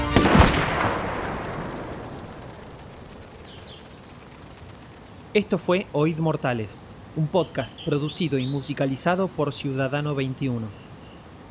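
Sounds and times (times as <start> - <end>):
firing-squad rifle volley executing prisoners: 0.0 - 5.4
speech: 5.3 - 10.8.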